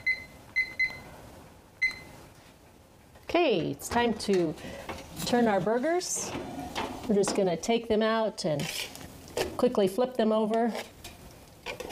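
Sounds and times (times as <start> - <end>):
electronic kitchen timer beeping: 0.0 - 1.0, 1.8 - 2.1
speech: 3.4 - 9.0, 9.6 - 10.9.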